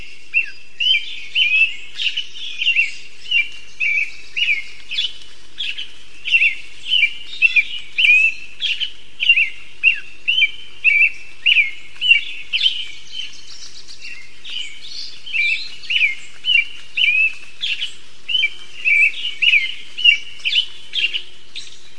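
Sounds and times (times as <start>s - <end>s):
American robin singing and calling in WA: 0.0s - 21.9s.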